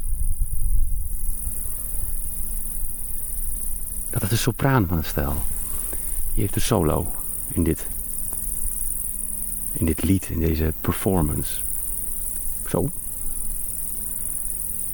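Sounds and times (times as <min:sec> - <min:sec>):
faint low rumble: 0:00.0 - 0:08.9, 0:09.5 - 0:14.9
cricket trilling in tall flowering grass: 0:00.0 - 0:14.9
speech: 0:04.2 - 0:05.6, 0:06.4 - 0:08.0, 0:09.8 - 0:11.7, 0:12.7 - 0:13.0
voice murmuring: 0:04.2 - 0:08.0, 0:09.8 - 0:11.6, 0:12.7 - 0:13.0.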